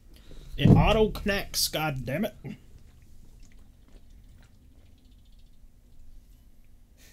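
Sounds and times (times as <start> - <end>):
low steady hum: 0.0 - 7.1
speech: 0.6 - 2.6
loud wet chewing of food: 2.6 - 6.8.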